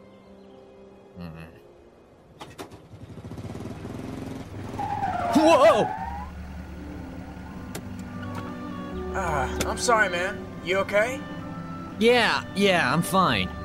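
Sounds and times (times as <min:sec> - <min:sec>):
car engine rumble: 0:02.3 - 0:10.6
car tires screeching under hard braking: 0:02.7 - 0:10.4
speech: 0:05.4 - 0:06.0, 0:09.4 - 0:11.3, 0:12.0 - 0:13.6.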